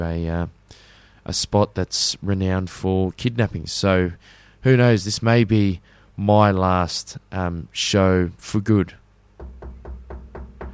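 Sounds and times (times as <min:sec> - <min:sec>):
speech: 0:00.0 - 0:09.0
knuckles knocking on a wooden surface: 0:09.4 - 0:10.7.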